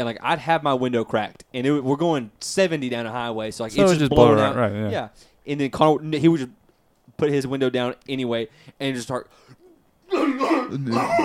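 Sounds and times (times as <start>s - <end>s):
speech: 0.0s - 11.2s
person imitating a harsh rasping chronic cough: 10.1s - 11.2s.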